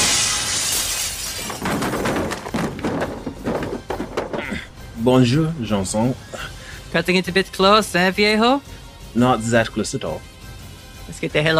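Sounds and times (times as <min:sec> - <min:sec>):
window glass shattering as someone crashes through: 0:00.0 - 0:04.9
dull thuds of falling debris: 0:00.0 - 0:06.5
speech: 0:05.0 - 0:10.3, 0:11.1 - 0:11.5.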